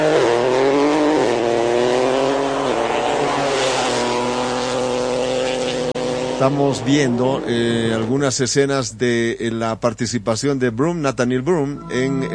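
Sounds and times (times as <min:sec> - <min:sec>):
rally car engine roaring at high revs in Paraguay: 0:00.0 - 0:08.6
speech: 0:06.4 - 0:12.3.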